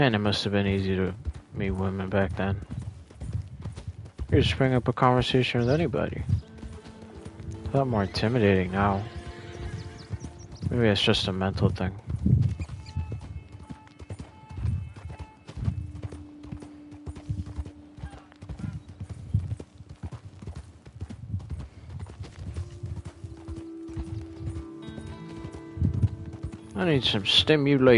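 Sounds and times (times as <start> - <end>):
speech: 0.0 - 2.8, 4.3 - 6.4, 7.7 - 9.2, 10.7 - 12.4, 26.9 - 27.9
horse hooves clip-clopping in a video game: 0.0 - 27.9
tonal music or ambience bed: 23.4 - 27.9.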